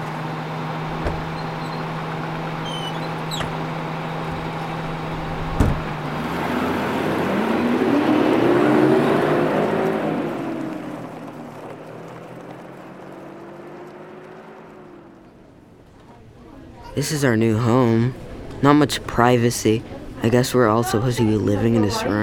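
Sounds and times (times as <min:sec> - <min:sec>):
bus engine idling and revving as it pulls away: 0:00.0 - 0:22.2
sharp clunk: 0:05.5 - 0:06.0
speech: 0:17.0 - 0:22.2.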